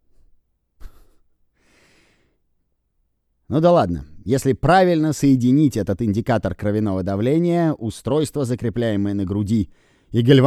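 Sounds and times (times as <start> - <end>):
longer airy exhale: 0.8 - 2.4
person imitating uneven breathing: 0.8 - 2.4, 9.7 - 10.2
sharp abrupt gasp: 0.8 - 2.4, 9.7 - 10.1
speech: 3.5 - 10.4.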